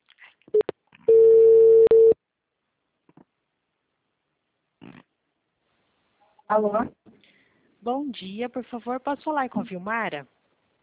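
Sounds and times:
telephone ringing on a call line: 1.1s - 2.2s
speech: 6.5s - 7.0s, 7.8s - 10.4s.

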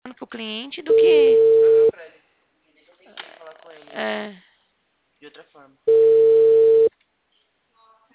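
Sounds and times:
speech: 0.3s - 2.0s, 5.2s - 6.6s
telephone ringback tone while placing a call: 0.9s - 1.9s, 5.9s - 6.9s.

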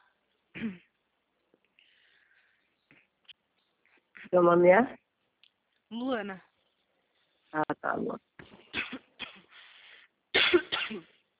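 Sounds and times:
speech: 0.6s - 0.8s, 4.3s - 5.0s, 5.9s - 6.5s, 7.5s - 9.0s
person coughing harshly: 0.6s - 0.9s, 8.7s - 9.5s, 10.4s - 11.2s
raspy trailing breath: 1.8s - 2.8s, 9.5s - 10.2s.

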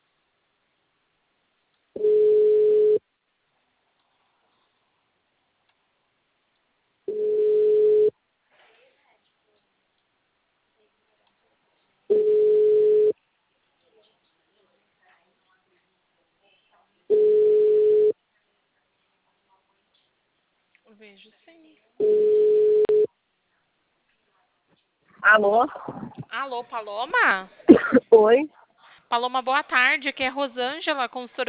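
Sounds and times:
telephone ringing tone beeps while an outgoing call is placed: 2.0s - 3.0s, 7.1s - 8.1s, 12.1s - 13.2s, 17.1s - 18.2s, 22.0s - 23.1s
speech: 21.0s - 22.2s, 25.2s - 31.4s.

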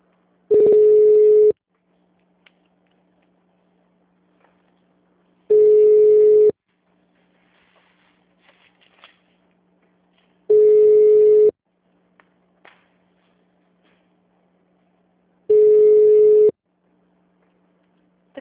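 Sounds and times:
telephone ringback tones while a call to a bank connects: 0.5s - 1.6s, 5.5s - 6.6s, 10.5s - 11.5s, 15.5s - 16.5s.

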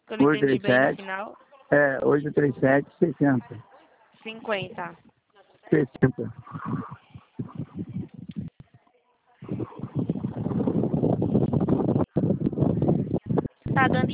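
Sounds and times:
speech: 0.1s - 5.1s, 5.7s - 7.0s, 13.8s - 14.1s
rough blustery wind buffeting a phone microphone during a phone call: 6.0s - 8.8s, 9.4s - 14.1s.

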